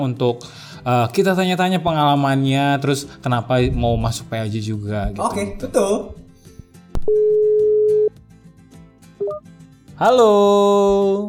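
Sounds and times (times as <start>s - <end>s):
speech: 0.0s - 6.2s, 7.1s - 7.3s, 10.0s - 11.2s
telephone dial tone while placing a call: 7.1s - 8.1s.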